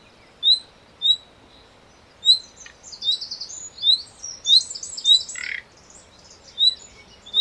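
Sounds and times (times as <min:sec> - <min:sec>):
common nightingale Luscinia megarhynchos calls: 0:00.0 - 0:07.3.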